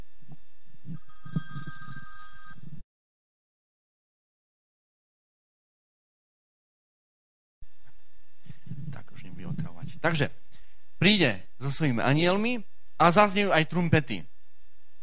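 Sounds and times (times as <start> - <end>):
mobile phone ringing with a bright tonal ringtone: 1.0 - 2.7
speech: 10.0 - 10.4, 11.0 - 14.3.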